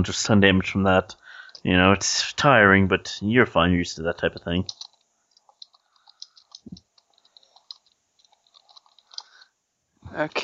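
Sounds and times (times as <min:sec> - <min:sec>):
speech: 0:00.0 - 0:04.8, 0:10.1 - 0:10.4
rapid keyboard typing: 0:04.2 - 0:09.4.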